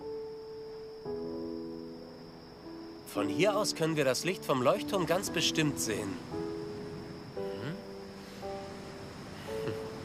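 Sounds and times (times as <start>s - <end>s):
speech: 3.1s - 6.5s
sea surf rushing at high tide: 3.9s - 10.0s.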